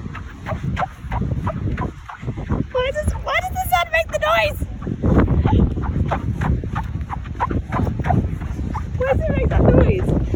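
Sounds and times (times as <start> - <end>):
footsteps on squeaky quartz sand on a beach at Gold Coast: 0.0 - 10.3.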